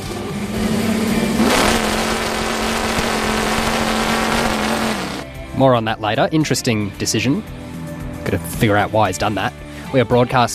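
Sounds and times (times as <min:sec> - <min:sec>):
big chainsaw with a V8 engine revving: 0:00.5 - 0:05.3
speech: 0:05.6 - 0:07.6, 0:08.2 - 0:10.5.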